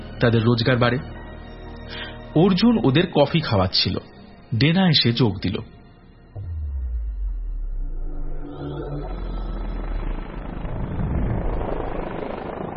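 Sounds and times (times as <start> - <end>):
speech: 0.2 - 1.2, 1.9 - 5.8
helicopter flying over pine trees: 6.4 - 12.7.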